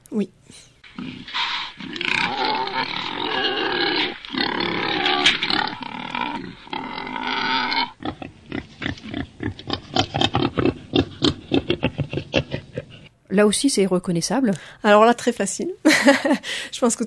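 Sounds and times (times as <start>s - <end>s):
speech: 0.1s - 1.5s, 13.4s - 17.0s
wild boar grunting, snorting and squealing: 0.8s - 13.2s.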